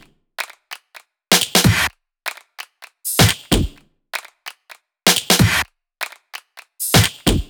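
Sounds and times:
big floor drum groove kit: 1.3s - 1.9s, 3.0s - 4.3s, 5.1s - 6.2s, 6.8s - 7.4s.

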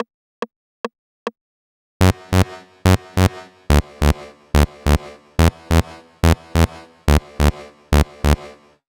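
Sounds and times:
bass line at 142 BPM: 2.0s - 8.5s.

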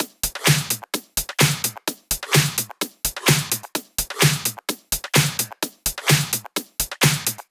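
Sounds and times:
128 BPM drum beat: 0.0s - 7.4s.

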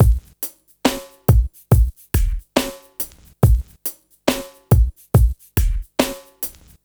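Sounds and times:
slow motion beat loop at 140 BPM: 0.0s - 0.4s, 1.3s - 3.8s, 4.7s - 6.7s.

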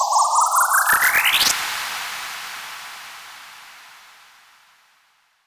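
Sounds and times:
uplifter sound effect: 0.2s - 2.5s.

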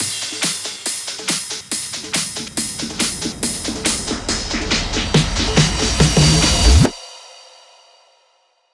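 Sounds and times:
hands up trance drum fills at 140 BPM: 0.0s - 6.9s.

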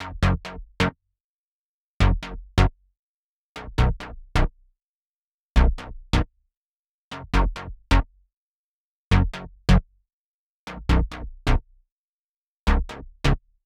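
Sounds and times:
dry bassline in F sharp minor: 0.0s - 0.8s, 2.0s - 2.7s, 3.6s - 4.5s, 5.6s - 6.3s, 7.3s - 8.1s, 9.1s - 9.8s, 10.7s - 11.7s, 12.7s - 13.4s.

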